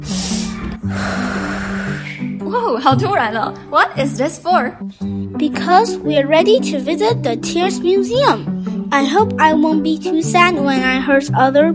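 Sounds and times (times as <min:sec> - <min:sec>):
deep breath in: 0:00.0 - 0:02.4
speech: 0:02.5 - 0:11.7.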